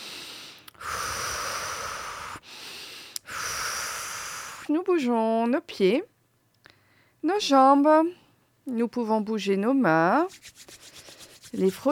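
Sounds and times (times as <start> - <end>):
deep breaths during a relaxation exercise: 0.0 - 4.7, 6.6 - 7.2
speech: 4.7 - 6.1, 7.2 - 10.8, 11.5 - 11.9.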